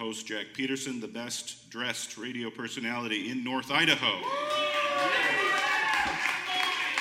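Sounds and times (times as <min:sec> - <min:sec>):
speech: 0:00.1 - 0:05.4
crowd cheering and whooping at a live radio show: 0:04.2 - 0:07.0
scattered clapping: 0:04.5 - 0:07.0.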